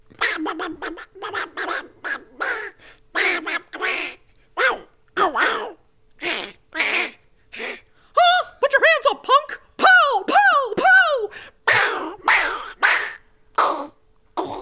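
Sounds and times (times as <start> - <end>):
person doing a raspy cartoon duck voice impression with quacking speech: 0.1 - 14.6.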